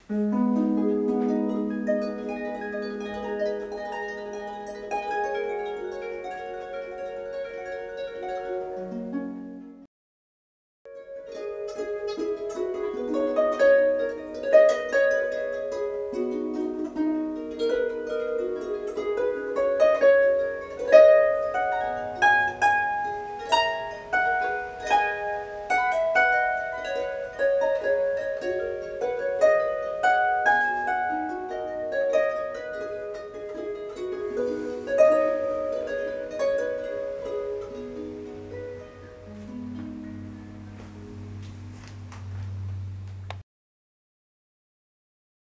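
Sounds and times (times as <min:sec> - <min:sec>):
double 26 string harp: 0:00.0 - 0:09.9, 0:10.9 - 0:43.4.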